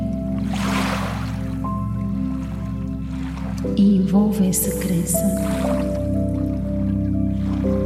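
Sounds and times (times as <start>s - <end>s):
soft wash of water lapping onto sand: 0.0s - 7.8s
speech: 3.6s - 6.2s.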